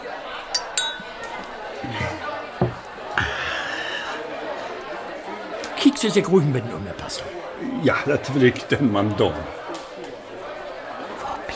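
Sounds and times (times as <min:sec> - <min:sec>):
murmur of people chatting: 0:00.0 - 0:11.5
champagne glasses clinking in a toast: 0:00.5 - 0:03.0
speech: 0:06.0 - 0:09.6.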